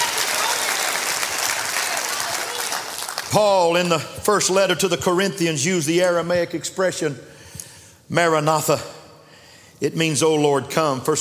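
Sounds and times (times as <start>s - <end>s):
crowd clapping in praise of the Lord: 0.0s - 4.0s
speech: 3.3s - 7.4s, 8.1s - 9.0s, 9.8s - 11.1s.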